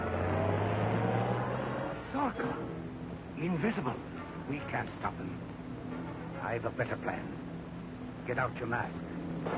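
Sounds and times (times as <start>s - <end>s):
runaway car engine running with a steady rumbling hum: 0.0s - 3.3s
speech: 2.3s - 2.8s, 3.4s - 5.6s, 6.4s - 7.4s, 8.3s - 9.5s.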